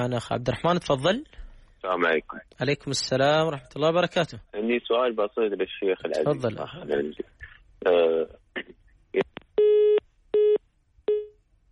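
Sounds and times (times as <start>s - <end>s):
speech: 0.0s - 9.3s
telephone busy tone after a dropped call: 9.6s - 11.3s.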